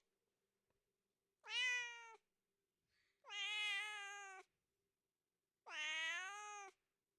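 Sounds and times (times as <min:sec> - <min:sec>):
tomcat yowling mating cries: 0:01.5 - 0:02.1, 0:03.3 - 0:04.4, 0:05.7 - 0:06.8.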